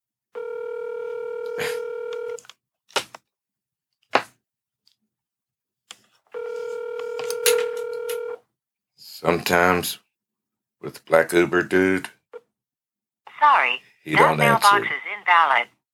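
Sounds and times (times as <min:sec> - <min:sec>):
telephone keypad dialing tones: 0:00.4 - 0:02.5, 0:06.4 - 0:08.4
speech: 0:09.2 - 0:10.0, 0:10.8 - 0:12.2, 0:14.0 - 0:15.8.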